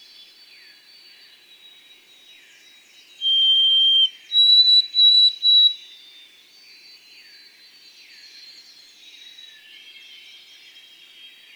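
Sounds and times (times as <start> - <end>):
white-throated sparrow whistled song: 3.2 - 5.8.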